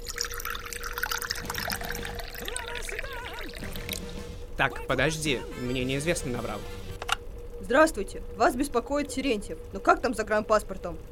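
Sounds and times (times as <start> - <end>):
hot tea pouring into a cup: 0.0 - 4.0
voice-like sounds: 2.0 - 3.7, 4.6 - 6.6
speech: 4.6 - 6.8, 7.7 - 11.0.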